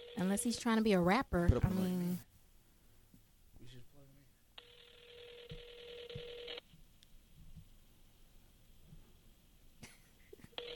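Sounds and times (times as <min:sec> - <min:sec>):
phone call ring tone on speakerphone: 0:00.0 - 0:00.7, 0:04.6 - 0:06.6, 0:10.6 - 0:10.7
speech: 0:00.2 - 0:02.3.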